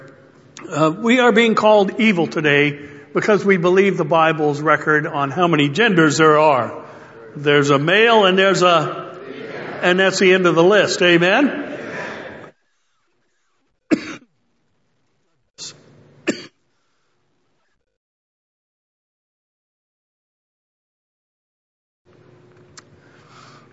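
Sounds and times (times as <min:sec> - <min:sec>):
speech: 0:00.7 - 0:06.8, 0:07.4 - 0:09.1, 0:09.8 - 0:11.8
laughter: 0:07.1 - 0:12.5
soft murmuring talk: 0:09.0 - 0:10.0
man with a cough and sore ribs clearing his throat: 0:13.9 - 0:14.3, 0:15.6 - 0:16.6
man with a cough and sore ribs coughing: 0:13.9 - 0:14.3, 0:15.6 - 0:16.6.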